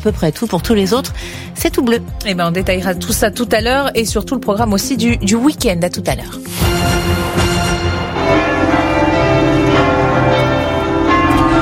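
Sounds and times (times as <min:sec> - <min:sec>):
speech: 0:00.0 - 0:07.2
church bells pealing in Tours France to celebrate the pope's arrival: 0:07.2 - 0:11.5.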